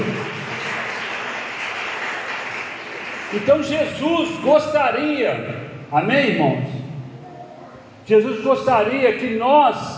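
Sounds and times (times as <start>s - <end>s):
crowd applauding: 0.0s - 4.0s
speech: 3.3s - 6.8s, 8.1s - 9.9s.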